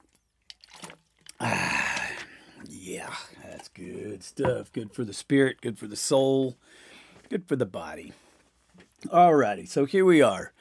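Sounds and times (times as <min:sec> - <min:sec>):
person sipping and swallowing water: 0:00.1 - 0:02.8
speech: 0:02.9 - 0:08.2, 0:09.0 - 0:10.5.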